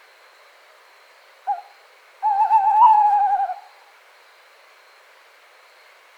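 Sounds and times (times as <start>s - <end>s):
tawny owl hooting: 1.5s - 3.8s.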